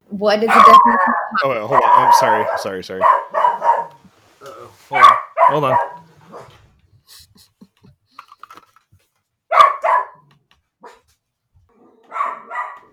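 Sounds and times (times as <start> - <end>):
speech: 0.1 - 3.4, 4.9 - 5.9
dog barking and yelping: 0.4 - 4.0, 4.9 - 6.6, 9.5 - 11.1, 12.0 - 12.9.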